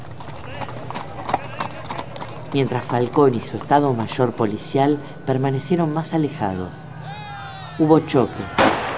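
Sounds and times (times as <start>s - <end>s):
horse hooves clip-clopping: 0.0s - 5.1s
speech: 2.5s - 6.8s, 7.8s - 8.6s.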